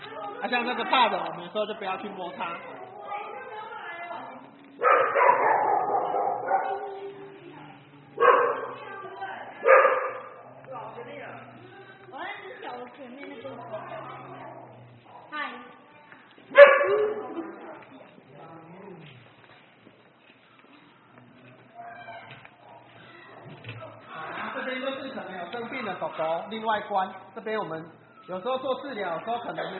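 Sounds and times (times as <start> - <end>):
speech: 0.4 - 2.8, 25.9 - 29.7
beagles barking in an animal shelter: 4.7 - 9.0, 9.6 - 11.8, 16.5 - 18.0, 21.6 - 23.6.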